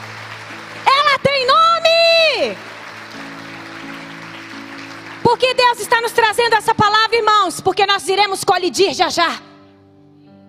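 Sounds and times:
audience clapping: 0.0 - 7.3
speech: 5.3 - 9.5.

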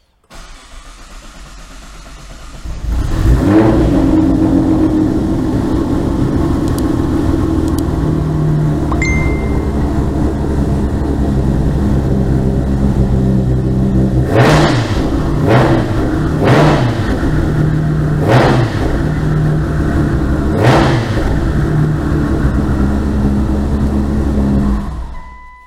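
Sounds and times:
tuned GT-R sports car engine running on E85 fuel revving: 2.6 - 25.0.

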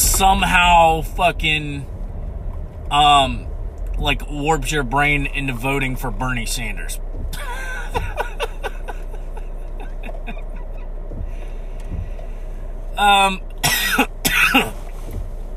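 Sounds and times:
speech: 0.2 - 1.9, 2.9 - 8.1, 13.0 - 14.8
person coughing harshly: 7.4 - 9.1, 13.6 - 14.8
laughter: 7.4 - 10.7.

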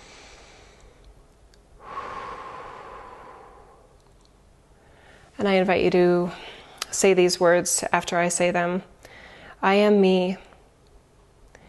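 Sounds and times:
deep breath during a guided relaxation exercise: 0.0 - 1.1, 1.8 - 4.2, 4.8 - 5.4, 9.0 - 9.6
speech: 5.4 - 8.9, 9.6 - 10.4.

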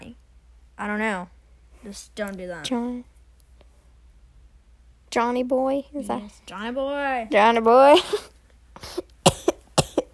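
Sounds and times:
speech: 0.8 - 3.1, 5.1 - 9.1
harsh raspy coughing fit: 8.0 - 10.1.

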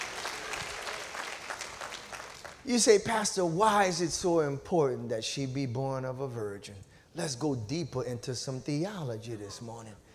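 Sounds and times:
church audience applauding in praise: 0.0 - 2.7
speech: 2.6 - 10.0.

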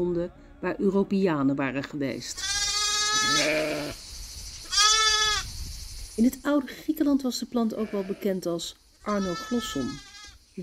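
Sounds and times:
speech: 0.0 - 2.6, 3.2 - 4.0, 6.2 - 10.6
sheep bleating: 2.4 - 4.0, 4.7 - 5.4, 9.1 - 10.4.

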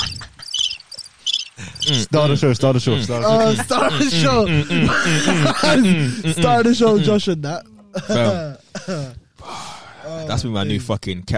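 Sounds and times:
laughter: 0.0 - 0.7, 1.6 - 7.3
crickets chirping: 0.0 - 3.4
speech: 1.9 - 9.2, 10.1 - 11.3.

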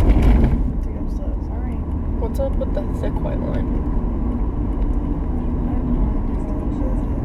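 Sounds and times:
car passing with loud low engine roar: 0.0 - 7.2
road rumble of passing car: 0.0 - 7.2
speech: 2.4 - 4.0.

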